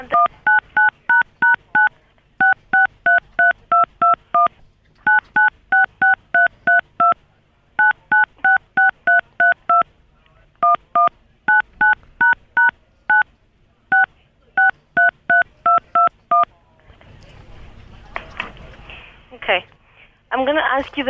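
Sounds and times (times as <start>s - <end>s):
telephone keypad dual tones from phone number entry: 0.1s - 4.5s, 5.1s - 7.2s, 7.8s - 9.8s, 10.6s - 13.2s, 13.9s - 16.5s
speech: 20.9s - 21.0s.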